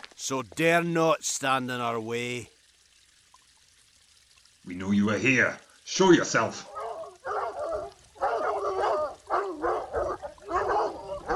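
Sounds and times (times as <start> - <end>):
speech: 0.2 - 2.6, 4.7 - 6.7
several dogs barking and baying: 6.6 - 11.3.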